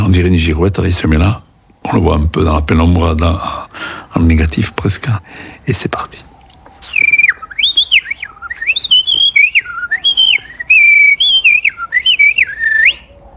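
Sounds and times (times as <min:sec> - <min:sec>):
speech: 0:00.1 - 0:06.3
common blackbird singing at dusk from a roof: 0:06.4 - 0:13.3.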